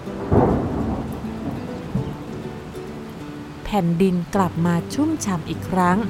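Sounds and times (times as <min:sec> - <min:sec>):
deep rolls of thunder: 0:00.0 - 0:02.9
heavy rain pouring at night: 0:00.0 - 0:06.0
loud thunder boom: 0:00.3 - 0:02.1
speech: 0:03.7 - 0:06.0.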